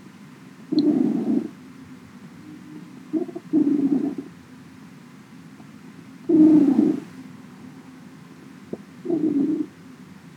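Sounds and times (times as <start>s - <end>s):
cat purring: 0.7s - 1.6s, 3.1s - 4.3s, 6.3s - 7.1s, 9.0s - 9.7s.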